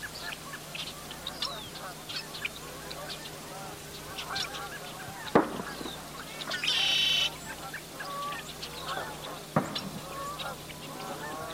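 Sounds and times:
busy outdoor bird chorus: 0.0s - 11.5s
flock of geese honking at sunrise: 0.0s - 11.5s
steady whine: 0.0s - 11.5s
sharp loud pops: 5.3s - 6.0s, 9.6s - 10.0s.

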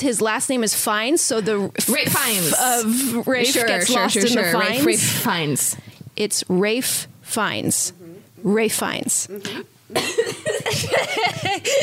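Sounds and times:
speech: 0.0s - 11.8s
person coughing and choking on a breath: 9.4s - 11.8s.

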